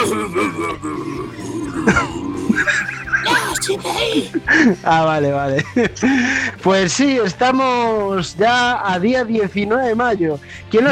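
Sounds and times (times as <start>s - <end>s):
person clearing throat with rough effortful grunting: 0.0s - 4.2s
laughter: 0.0s - 6.7s
speech: 3.7s - 10.8s.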